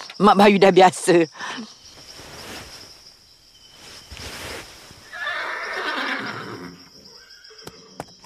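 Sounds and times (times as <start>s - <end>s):
speech: 0.2s - 1.8s
steady hiss outdoors: 0.5s - 6.7s
light rustling outdoors: 1.6s - 5.4s
horse neighing: 5.0s - 6.9s.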